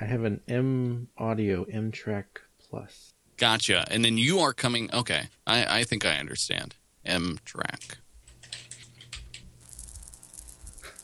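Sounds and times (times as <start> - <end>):
speech: 0.0 - 8.0
low hum: 0.0 - 11.0
typing on a computer keyboard: 7.7 - 9.9.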